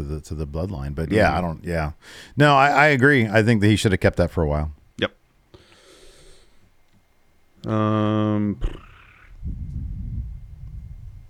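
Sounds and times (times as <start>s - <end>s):
speech: 0.0s - 5.2s, 7.6s - 8.9s
cat purring: 8.6s - 11.2s.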